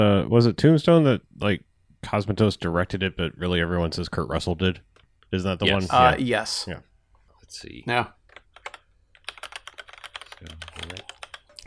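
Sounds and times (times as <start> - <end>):
speech: 0.0 - 6.9, 7.5 - 8.2
computer keyboard typing during a Skype call: 8.2 - 11.6.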